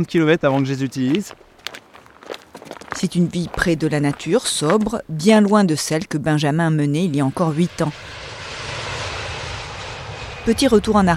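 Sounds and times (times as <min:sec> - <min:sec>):
speech: 0:00.0 - 0:01.8, 0:03.0 - 0:08.2, 0:10.4 - 0:11.1
airplane engine roaring as the aircraft flies over: 0:06.7 - 0:11.1.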